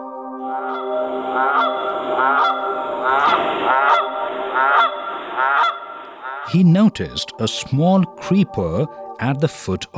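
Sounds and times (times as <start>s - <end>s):
flock of wild geese honking in a tall tree in a forest: 0.5s - 6.6s
speech: 6.5s - 9.9s.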